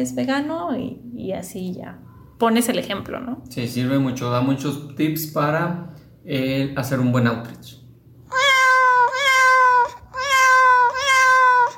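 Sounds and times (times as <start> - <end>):
speech: 0.0 - 7.8
cat meowing loudly: 8.3 - 11.7.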